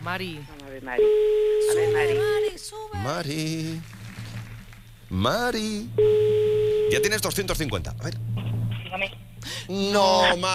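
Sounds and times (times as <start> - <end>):
speech: 0.0 - 3.9, 5.1 - 8.3, 8.9 - 10.5
telephone ringback tone after dialing: 1.0 - 2.6, 6.0 - 7.2.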